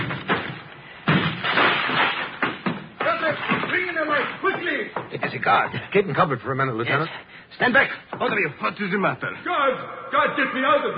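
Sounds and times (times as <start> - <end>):
heavy splintering blows breaking down a door: 0.0 - 4.4
speech: 4.8 - 10.9.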